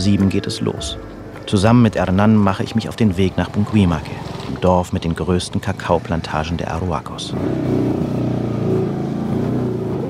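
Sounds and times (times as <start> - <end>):
speech: 0.0 - 8.4
two motorcycle taxi engines revving on a rough potholed road: 2.0 - 10.0.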